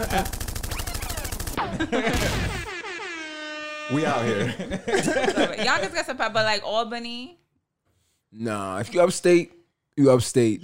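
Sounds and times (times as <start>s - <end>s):
laughter: 0.0s - 0.4s, 1.6s - 2.8s, 3.9s - 6.2s
speech: 0.0s - 0.4s, 1.6s - 2.7s, 3.9s - 7.4s, 8.3s - 10.6s
rapid steady burst of machine-gun fire: 0.0s - 2.7s.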